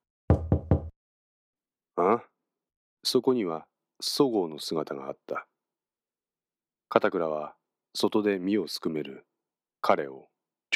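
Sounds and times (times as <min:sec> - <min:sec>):
knocking on the driver's side window of a car: 0:00.3 - 0:00.9
speech: 0:02.0 - 0:02.3, 0:03.0 - 0:05.5, 0:06.9 - 0:10.7.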